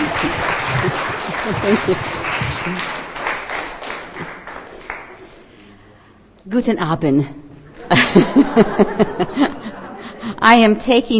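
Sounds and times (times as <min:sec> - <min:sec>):
laughter: 0:00.0 - 0:03.2, 0:07.7 - 0:10.4
audience applause at a religious gathering: 0:00.0 - 0:05.4
speech: 0:01.6 - 0:02.9, 0:06.5 - 0:09.6, 0:10.4 - 0:11.1.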